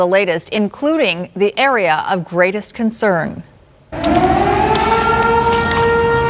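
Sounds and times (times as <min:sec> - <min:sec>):
speech: 0:00.0 - 0:04.3
loud outdoor flood warning siren wailing: 0:03.9 - 0:06.2
rumbling background: 0:04.0 - 0:06.2.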